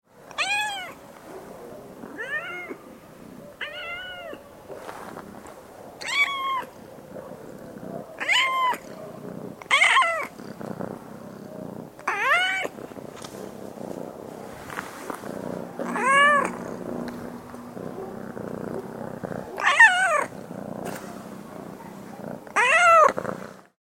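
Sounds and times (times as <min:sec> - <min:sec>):
domestic cat purring: 0:00.2 - 0:23.6
domestic cat meowing: 0:00.3 - 0:01.0, 0:02.2 - 0:02.8, 0:03.6 - 0:04.4, 0:06.0 - 0:06.7, 0:08.2 - 0:09.0, 0:09.7 - 0:10.3, 0:12.0 - 0:12.7, 0:15.8 - 0:16.6, 0:19.5 - 0:20.3, 0:22.6 - 0:23.2.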